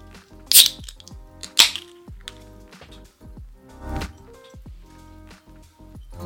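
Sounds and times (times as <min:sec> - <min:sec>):
beer bottle opening clicks: 0:00.5 - 0:01.9.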